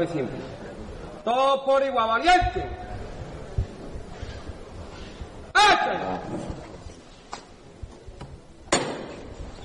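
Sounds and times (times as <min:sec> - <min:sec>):
speech: 0:00.0 - 0:00.6, 0:01.2 - 0:02.8, 0:05.9 - 0:06.6
hammer strike on a Holy Week procession float's knocker: 0:08.7 - 0:09.2.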